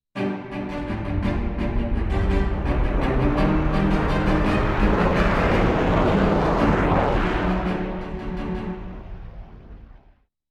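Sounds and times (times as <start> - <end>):
cello theme: 0.2 - 9.0
flyby: 1.4 - 10.0.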